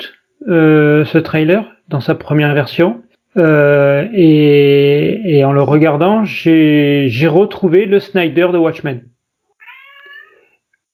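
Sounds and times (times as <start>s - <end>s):
speech: 0.0s - 9.1s
cat meowing: 9.5s - 10.6s.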